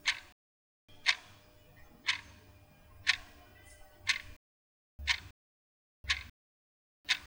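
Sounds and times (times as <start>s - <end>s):
classic clock ticking: 0.0s - 4.4s, 5.0s - 5.3s, 6.0s - 6.3s, 7.1s - 7.2s.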